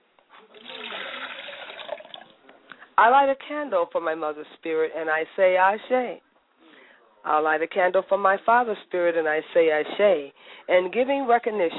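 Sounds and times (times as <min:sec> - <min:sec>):
water poured out as a libation: 0:00.5 - 0:02.4
speech: 0:03.0 - 0:06.3, 0:07.2 - 0:11.7.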